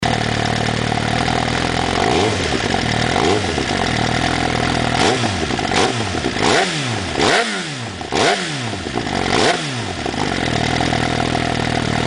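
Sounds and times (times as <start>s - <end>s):
Suzuki GSX-R1000 motorcycle engine: 0.0s - 12.0s.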